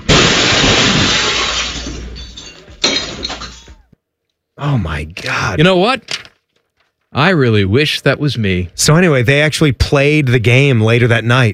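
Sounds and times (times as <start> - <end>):
car smashing through a storefront window: 0.0 - 3.9
falling debris and tinkling glass shards: 0.1 - 3.8
speech: 4.6 - 6.2, 7.1 - 11.5.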